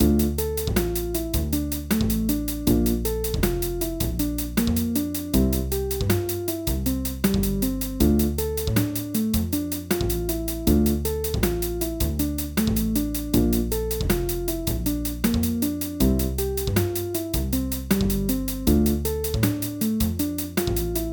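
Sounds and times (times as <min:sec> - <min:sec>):
three against two backing rhythm: 0:00.0 - 0:21.1.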